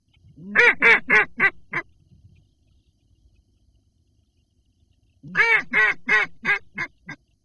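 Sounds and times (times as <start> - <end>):
ducks: 0.4 - 1.9, 5.2 - 7.2.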